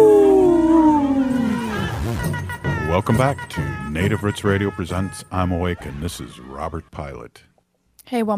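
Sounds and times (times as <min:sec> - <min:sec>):
wolf howling: 0:00.0 - 0:01.8
speech: 0:03.0 - 0:07.5, 0:08.1 - 0:08.3.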